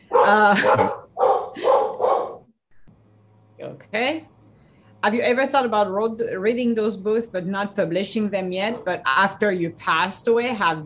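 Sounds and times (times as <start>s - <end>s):
dogs barking loud tonal barks: 0.0s - 2.5s
speech: 0.3s - 1.0s, 3.8s - 4.3s, 5.0s - 10.8s.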